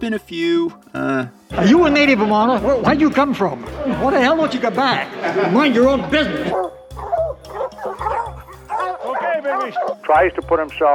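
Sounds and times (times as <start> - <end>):
speech: 0.0 - 7.1, 9.6 - 10.9
laughter: 1.7 - 7.3, 8.0 - 10.0
dog barking and whimpering: 6.5 - 10.0.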